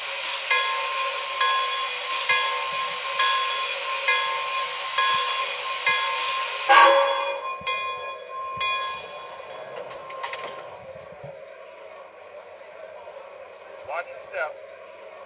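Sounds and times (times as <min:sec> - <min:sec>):
steam hiss of passenger train at station platform: 0:00.0 - 0:09.7
passenger train slow regular chuffs at station platform: 0:00.0 - 0:15.2.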